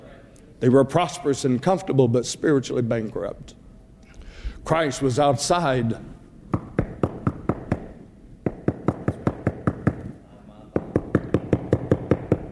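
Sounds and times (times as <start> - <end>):
speech: 0.6 - 3.6, 4.6 - 6.2
rapid knocking on a door: 6.5 - 10.0, 10.8 - 12.4.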